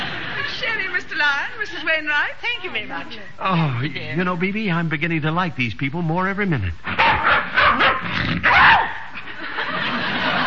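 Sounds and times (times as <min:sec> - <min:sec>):
laughter: 0:00.0 - 0:01.0, 0:09.2 - 0:10.4
steady hiss of noise: 0:00.0 - 0:10.4
speech: 0:00.8 - 0:07.0
small dog yapping: 0:07.0 - 0:09.1.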